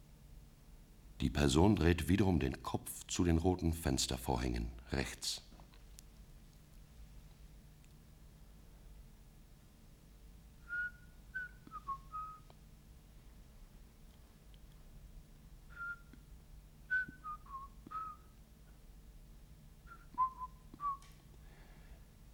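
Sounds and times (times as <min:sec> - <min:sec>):
low steady hum: 0:00.0 - 0:22.3
speech: 0:01.2 - 0:05.5
soft whistling through the teeth: 0:10.6 - 0:12.5, 0:15.7 - 0:16.2, 0:16.9 - 0:18.3, 0:19.9 - 0:21.0.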